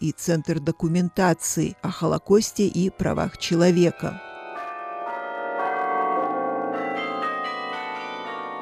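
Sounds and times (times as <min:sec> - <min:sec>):
speech: 0:00.0 - 0:04.3
carillon bells ringing from cathedral bell tower: 0:04.2 - 0:08.5.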